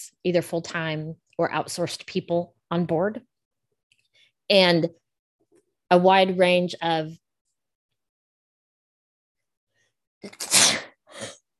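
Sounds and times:
speech: 0.0 - 3.3, 4.5 - 5.0, 5.9 - 7.2, 10.2 - 10.6
person sneezing: 10.2 - 11.4
sniff: 10.3 - 11.4.

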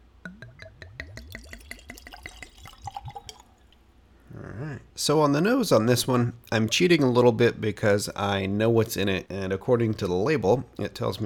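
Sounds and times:
liquid splashing in a glass: 0.2 - 3.9
drink glugging from a bottle into a glass: 0.3 - 3.8
speech: 5.0 - 11.2.

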